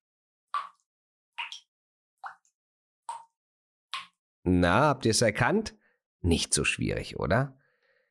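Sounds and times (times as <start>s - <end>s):
water dripping from a tap: 0.6s - 2.5s, 3.1s - 3.4s, 4.0s - 4.2s
speech: 4.4s - 7.6s.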